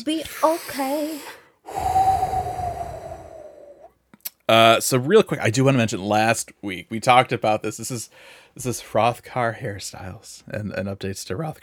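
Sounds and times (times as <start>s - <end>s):
speech: 0.0s - 1.9s, 4.5s - 11.6s
deep breath: 0.4s - 3.9s, 8.1s - 8.6s.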